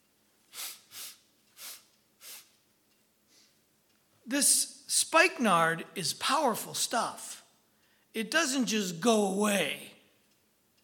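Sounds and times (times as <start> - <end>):
person mimicking sniffing with short sharp nasal inhales: 0.5 - 2.6
speech: 4.3 - 7.4, 8.2 - 9.9.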